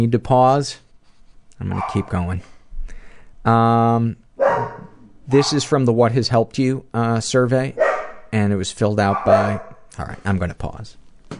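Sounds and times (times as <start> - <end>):
speech: 0.0 - 0.8, 1.6 - 2.5, 3.4 - 4.2, 5.3 - 11.3
dog barking: 1.7 - 2.2, 4.4 - 5.7, 7.8 - 8.3, 9.0 - 9.8.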